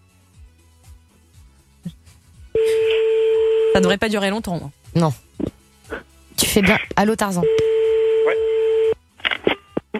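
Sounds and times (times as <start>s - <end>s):
outgoing telephone call ringing tone: 2.6s - 4.0s, 7.4s - 9.0s
speech: 3.8s - 5.2s, 6.6s - 8.5s.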